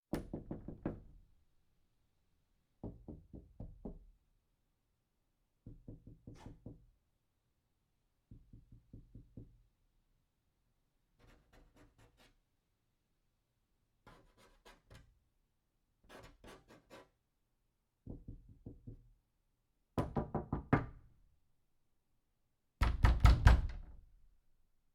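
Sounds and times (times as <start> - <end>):
knocking on wooden door: 0.2 - 1.1, 2.8 - 4.0, 5.6 - 6.8, 8.3 - 9.5, 18.1 - 19.1, 20.0 - 21.0, 22.8 - 24.0.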